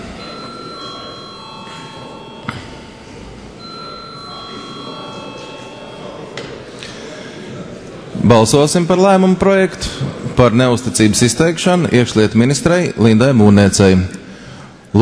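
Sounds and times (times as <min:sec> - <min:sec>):
electric bell ringing in a large room: 0:00.0 - 0:06.7
constant murmur of noise: 0:00.0 - 0:15.0
speech: 0:08.3 - 0:14.2.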